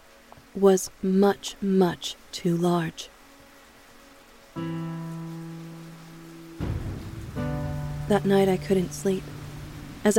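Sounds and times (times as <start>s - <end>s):
speech: 0.6s - 3.1s, 8.1s - 9.4s
rain pounding against a roof: 3.1s - 10.1s.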